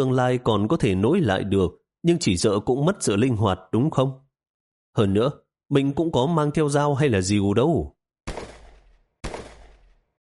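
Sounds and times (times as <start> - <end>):
speech: 0.0 - 4.2, 5.0 - 8.0
gunfire inside a boat cabin: 8.3 - 10.1.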